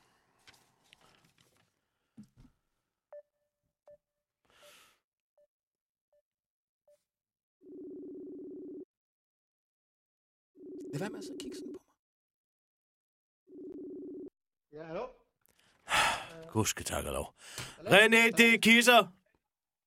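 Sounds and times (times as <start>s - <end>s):
rustling and handling noise: 0.0s - 2.6s
long steady ringing tone of an outgoing phone call: 7.6s - 8.9s, 10.6s - 11.8s, 13.5s - 14.3s
speech: 11.0s - 11.9s, 14.8s - 15.2s, 16.4s - 19.2s.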